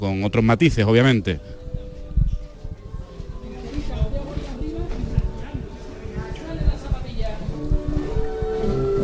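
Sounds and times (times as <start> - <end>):
speech: 0.0 - 1.6
voices murmuring: 0.0 - 9.0
costaleros shuffling sneakers in unison beneath a procession float: 2.0 - 5.6.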